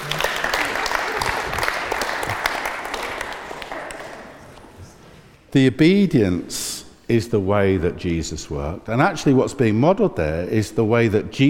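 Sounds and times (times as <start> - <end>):
room full of people applauding: 0.0 - 4.6
speech: 5.5 - 11.4.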